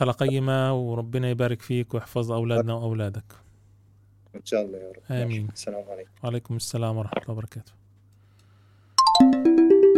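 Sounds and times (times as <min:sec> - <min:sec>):
speech: 0:00.0 - 0:03.4, 0:04.4 - 0:07.8
electronic phone ringtone of an incoming call: 0:09.0 - 0:09.9.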